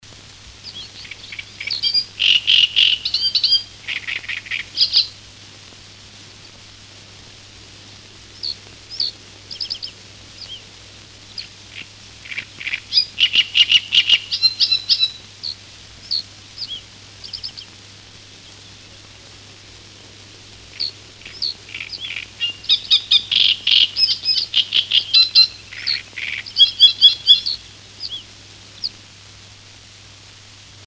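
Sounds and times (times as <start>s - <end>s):
great reed warbler: 0.6s - 5.2s, 8.3s - 19.0s, 20.7s - 29.0s.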